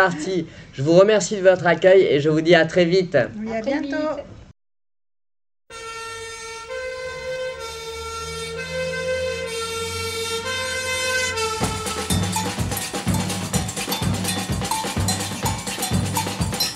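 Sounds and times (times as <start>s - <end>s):
speech: 0.0s - 4.4s
fire siren blaring at night in Rio calling firefighters: 5.7s - 12.2s
rapid metallic clanging: 11.4s - 16.7s.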